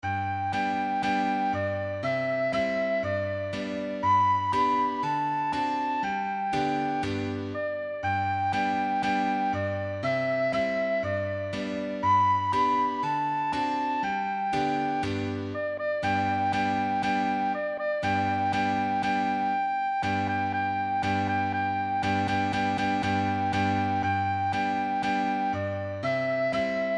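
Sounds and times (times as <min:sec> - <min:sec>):
recorder playing a nursery tune: 0:00.0 - 0:26.9.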